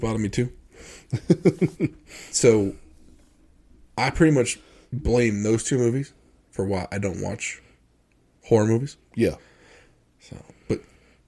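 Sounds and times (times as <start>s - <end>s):
speech: 0.0s - 2.8s, 4.0s - 7.6s, 8.4s - 9.5s, 10.2s - 10.9s
person blowing their nose: 0.9s - 3.1s
laughter: 1.1s - 2.0s.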